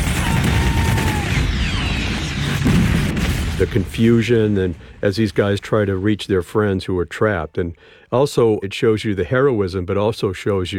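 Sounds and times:
battle gunfire amid barricades and smoke: 0.0s - 4.9s
RPG explosions: 0.0s - 6.4s
speech: 3.6s - 10.7s.

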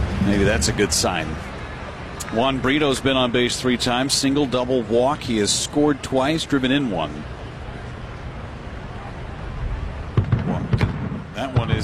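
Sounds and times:
low rumbling murmur of ambience at a baseball game: 0.0s - 11.8s
speech: 0.2s - 1.5s, 2.3s - 7.4s
distant booms during a baseball game: 10.1s - 11.8s.

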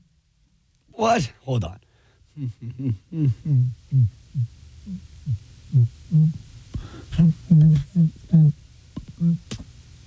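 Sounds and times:
speech: 1.0s - 1.8s, 2.4s - 8.6s, 9.2s - 9.7s
person humming with nose pinched shut: 2.4s - 9.6s.

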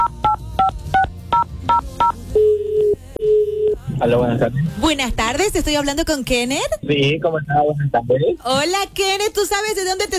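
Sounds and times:
steady phone tone: 0.0s - 3.8s
speech: 4.0s - 10.1s.

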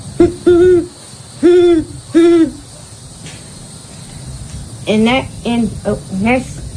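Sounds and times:
little kid imitating great horned owl hoots: 0.0s - 2.7s
speech: 4.9s - 6.6s.

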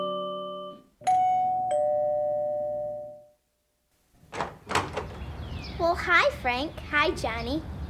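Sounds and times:
doorbell chiming: 0.0s - 3.3s
speech: 6.0s - 7.7s.

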